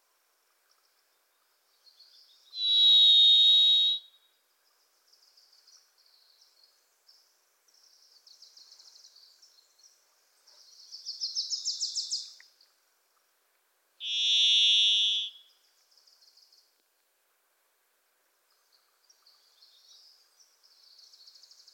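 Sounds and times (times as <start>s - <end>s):
Varied Thrush, Ixoreus naevius, giving a buzzy whistle in a Pacific Northwest forest: 2.6s - 4.1s, 14.0s - 15.4s.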